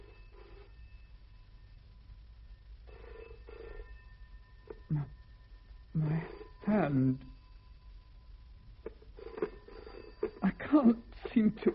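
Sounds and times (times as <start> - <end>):
telephone bell ringing: 0.0 - 1.2, 2.9 - 5.1, 6.0 - 7.8, 9.2 - 11.2
low steady hum: 0.0 - 11.7.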